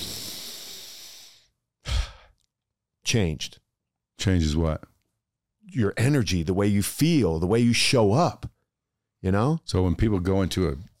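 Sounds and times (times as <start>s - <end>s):
deep breath: 0.0s - 2.4s
speech: 3.1s - 3.6s, 4.2s - 4.9s, 5.6s - 8.5s, 9.2s - 10.9s.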